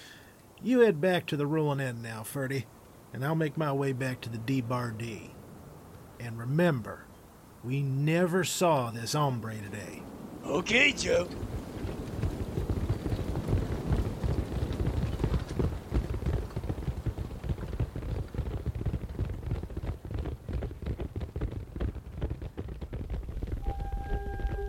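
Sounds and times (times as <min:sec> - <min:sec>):
speech: 0:00.6 - 0:05.4, 0:06.2 - 0:11.6
horses' hooves clip-clopping in the desert: 0:10.6 - 0:24.6
faint sustained tone: 0:23.6 - 0:24.6.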